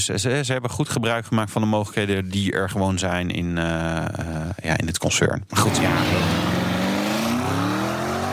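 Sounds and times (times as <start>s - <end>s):
speech: 0.0s - 6.6s
4-liter 650 hp V8 car engine revving: 5.6s - 8.3s.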